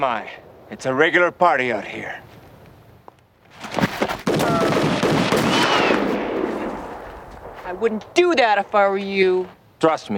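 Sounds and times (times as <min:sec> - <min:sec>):
speech: 0:00.0 - 0:02.3, 0:07.7 - 0:10.1
sharp loud gunshots from a film clip: 0:03.9 - 0:08.8.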